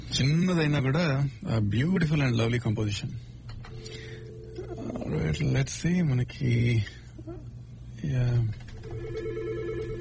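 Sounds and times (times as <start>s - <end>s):
speech: 0.2s - 4.0s, 5.1s - 7.0s, 8.0s - 9.3s
telephone ringing with an incoming call: 3.7s - 4.9s, 8.8s - 9.9s.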